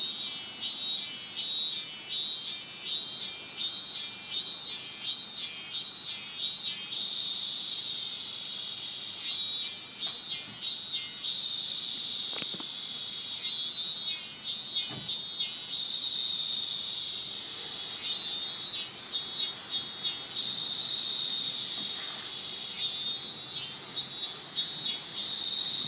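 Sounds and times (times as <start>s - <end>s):
minmin cicada song, Hyalessa maculaticollis: 0.0s - 25.8s.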